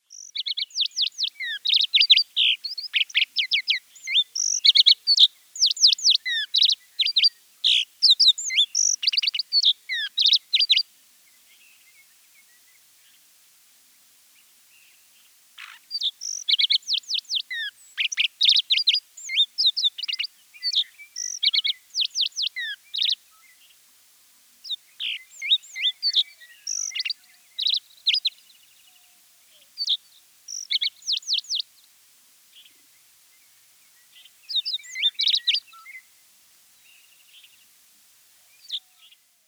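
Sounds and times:
skylark singing: 0.0s - 10.9s, 15.6s - 23.7s, 24.6s - 28.4s, 29.8s - 31.7s, 34.1s - 36.1s.

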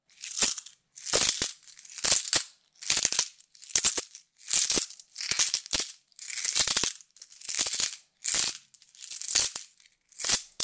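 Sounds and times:
small change coins jingling: 0.2s - 10.6s.

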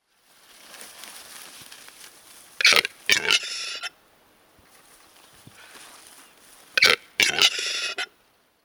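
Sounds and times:
capercaillie calling: 1.9s - 4.0s, 4.8s - 8.2s.

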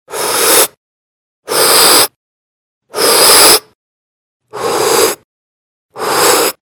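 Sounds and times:
person inhaling: 0.1s - 0.8s, 1.5s - 2.2s, 2.9s - 3.8s, 4.5s - 5.2s, 5.9s - 6.6s.

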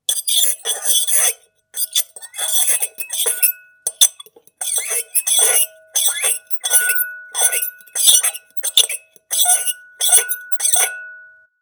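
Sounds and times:
fork: 0.1s - 11.3s.

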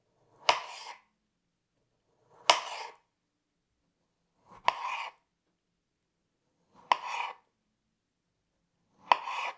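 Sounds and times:
knife sound: 0.1s - 1.1s, 2.2s - 3.1s, 4.4s - 5.3s, 6.6s - 7.5s, 8.9s - 9.5s.

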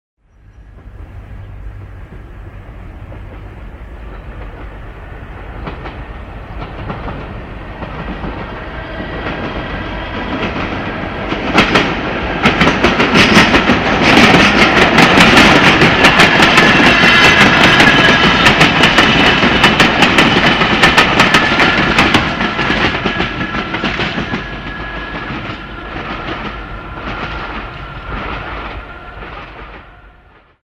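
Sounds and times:
electric train: 0.2s - 30.6s.

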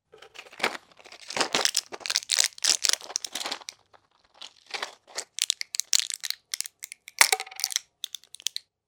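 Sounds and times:
pills: 0.2s - 8.6s.

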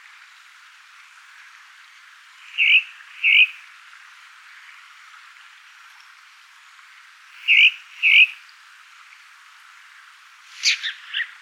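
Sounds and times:
faint airy hiss: 0.0s - 11.4s
thrush calling in paired whistles and chirpy phrases: 2.5s - 3.6s, 7.4s - 8.4s, 10.5s - 11.4s.

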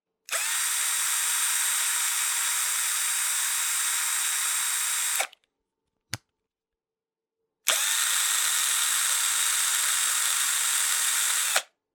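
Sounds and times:
screwdriver: 0.3s - 5.4s, 7.7s - 11.7s.

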